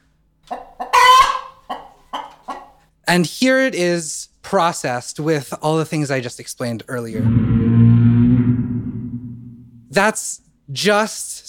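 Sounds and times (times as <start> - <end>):
chicken clucking: 0.5 - 2.8
speech: 3.1 - 7.9, 10.0 - 11.4.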